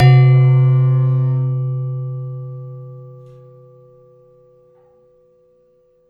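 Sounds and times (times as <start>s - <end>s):
gender metallophone of a gamelan: 0.0s - 4.7s.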